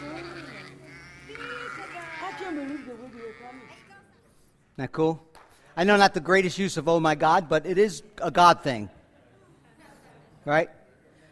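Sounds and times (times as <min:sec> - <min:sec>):
flock of sheep bleating as they follow shepherd: 0:00.0 - 0:04.1
speech: 0:02.9 - 0:03.9, 0:04.8 - 0:09.0, 0:10.4 - 0:10.8.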